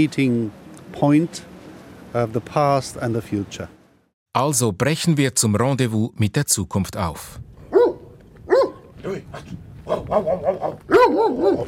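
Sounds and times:
speech: 0.0s - 1.5s, 2.1s - 3.8s, 4.4s - 7.5s, 9.0s - 11.6s
large dog barking while being teased: 7.7s - 11.6s
large dog whimpering yelps: 9.9s - 11.6s.

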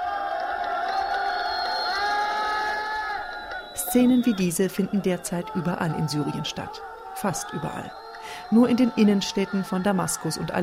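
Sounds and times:
large crowd cheering and shouting: 0.0s - 10.6s
speech: 3.9s - 10.6s.

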